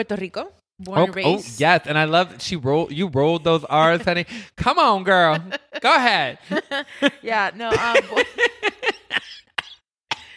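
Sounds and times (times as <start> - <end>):
speech: 0.0 - 9.4
harsh coughing fit: 9.1 - 10.3.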